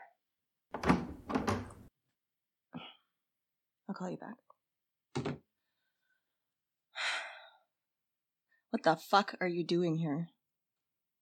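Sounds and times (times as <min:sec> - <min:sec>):
door opening with a rattling scraping swing: 0:00.8 - 0:01.9
speech: 0:04.0 - 0:04.6, 0:08.7 - 0:10.4.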